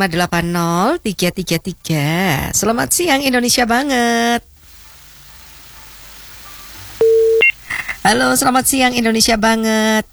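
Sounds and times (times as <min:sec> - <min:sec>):
speech: 0:00.0 - 0:04.4, 0:08.1 - 0:10.1
faint telephone line hiss: 0:02.4 - 0:10.1
steady telephone line tone after a call is cut off: 0:04.6 - 0:10.0.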